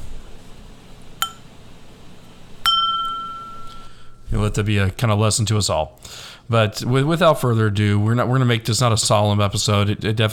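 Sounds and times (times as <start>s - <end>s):
glasses clinking in a toast: 1.2s - 1.5s, 2.6s - 4.2s
speech: 4.3s - 10.3s.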